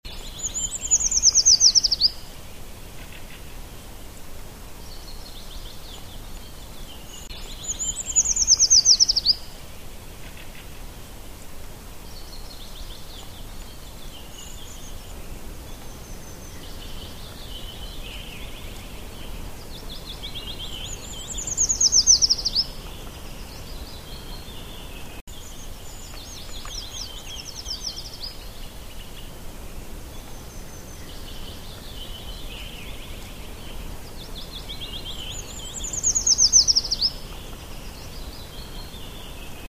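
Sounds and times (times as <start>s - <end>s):
Certhia familiaris calling: 0.0s - 4.1s, 4.7s - 39.7s.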